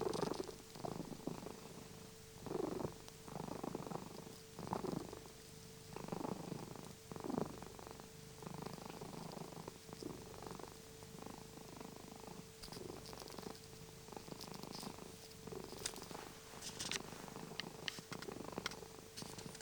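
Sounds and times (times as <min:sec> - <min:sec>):
domestic cat purring: 0:00.0 - 0:19.6
steady hum: 0:00.0 - 0:19.6
rustling: 0:12.7 - 0:19.6.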